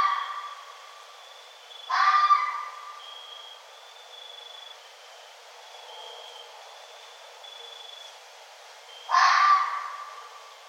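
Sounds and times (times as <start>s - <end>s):
red fox harsh hoarse scream: 1.9s - 2.8s, 9.1s - 10.3s.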